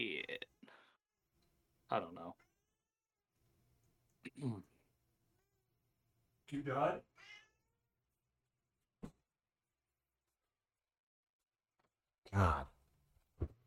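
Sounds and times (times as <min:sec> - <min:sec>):
speech: 0:01.9 - 0:02.4, 0:04.2 - 0:04.7, 0:06.5 - 0:07.4, 0:12.3 - 0:12.7
cat meowing: 0:07.2 - 0:07.7.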